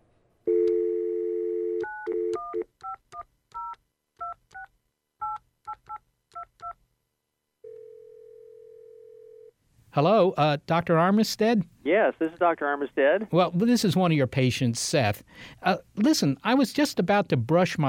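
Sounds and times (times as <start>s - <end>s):
telephone dial tone: 0.5s - 2.6s, 7.6s - 9.5s
speech: 10.0s - 17.8s.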